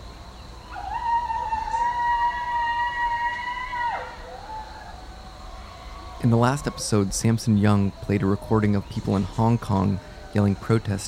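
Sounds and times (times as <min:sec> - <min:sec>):
person howling at night in a rural Northern California neighborhood during coronavirus lockdown: 0:00.7 - 0:06.8
speech: 0:06.2 - 0:11.0.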